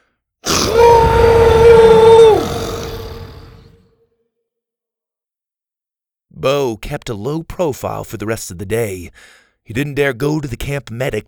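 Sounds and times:
bellowing dinosaur roar in an arena: 0.4s - 3.8s
speech: 6.4s - 11.2s.

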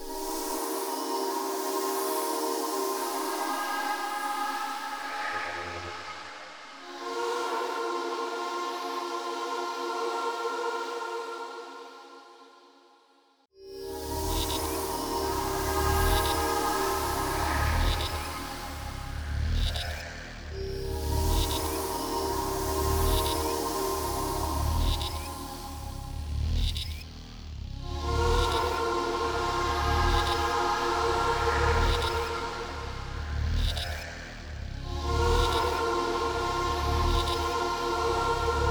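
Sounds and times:
choir-like drones built from mosquito buzzing: 0.0s - 13.0s, 13.6s - 38.6s
deep pulsing bass hum made from a bee recording: 17.4s - 38.6s.

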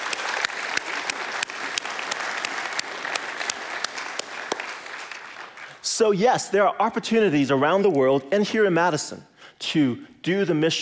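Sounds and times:
audience applause: 0.0s - 5.8s
speech: 6.0s - 10.8s.

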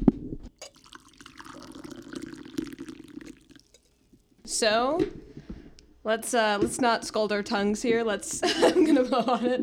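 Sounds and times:
tea pouring into a cup: 0.6s - 4.3s
speech: 4.5s - 5.2s, 6.0s - 9.6s
laughter: 8.3s - 9.6s.

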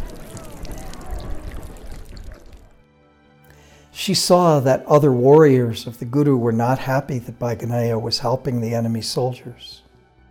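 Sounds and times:
water pouring from a vessel for a wounded man to drink: 0.0s - 2.8s
speech: 4.0s - 9.8s.

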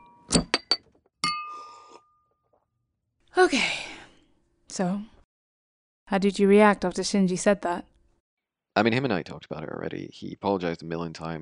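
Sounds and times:
glasses clinking in a toast: 0.0s - 2.3s
speech: 3.4s - 3.8s, 4.8s - 5.1s, 6.1s - 7.9s, 8.8s - 11.3s.

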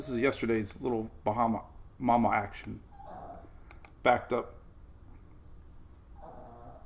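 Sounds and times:
speech: 0.0s - 2.9s, 4.0s - 4.6s
dog snoring quietly: 6.2s - 6.8s.

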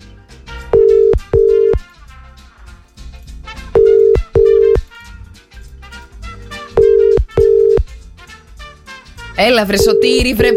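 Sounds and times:
continuous music: 0.0s - 10.5s
telephone line ringing unanswered: 0.8s - 1.8s, 3.8s - 4.8s, 6.8s - 7.9s, 9.8s - 10.5s
speech: 9.4s - 10.5s.

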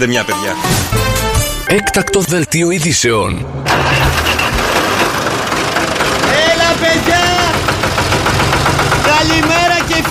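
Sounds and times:
speech: 0.0s - 1.1s, 1.7s - 4.0s
heavy tractor engine running: 3.6s - 10.0s.

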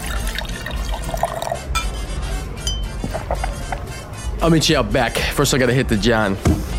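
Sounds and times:
drinks pouring into a glass: 0.0s - 1.9s
glassware clinking: 0.1s - 3.8s
speech: 4.4s - 6.6s.

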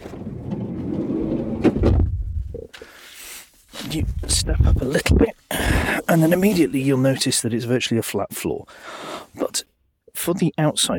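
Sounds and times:
heavy vehicle rear sliding passenger door opening: 0.0s - 2.2s
speech: 3.9s - 10.9s.

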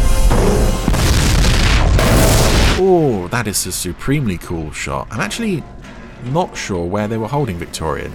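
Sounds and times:
crackling debris bursts: 0.0s - 2.8s
explosion boom: 0.2s - 2.8s
speech: 2.9s - 8.1s.

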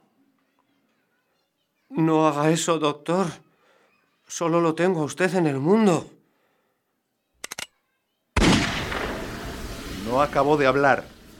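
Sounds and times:
speech: 1.9s - 3.4s, 4.3s - 6.2s, 10.1s - 11.2s
loud gunshot: 8.4s - 9.7s.

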